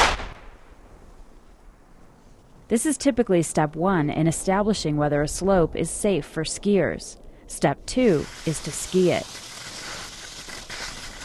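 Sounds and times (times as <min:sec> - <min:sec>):
explosive blast set off by ski patrollers for avalanche control on steep snowy terrain: 0:00.0 - 0:00.8
speech: 0:02.7 - 0:09.4.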